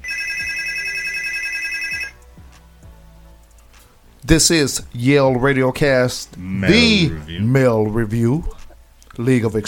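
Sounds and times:
telephone ringing with an incoming call: 0.0 - 2.2
speech: 4.3 - 8.6, 9.2 - 9.6.

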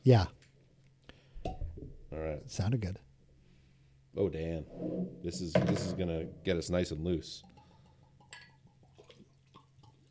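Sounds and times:
speech: 0.0 - 0.4, 2.1 - 3.0, 4.2 - 7.5
bourbon poured into a glass: 7.6 - 10.0.

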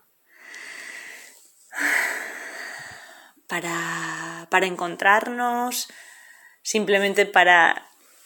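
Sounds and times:
long airy deep breaths: 0.3 - 3.4, 5.9 - 6.6
speech: 3.5 - 7.9.

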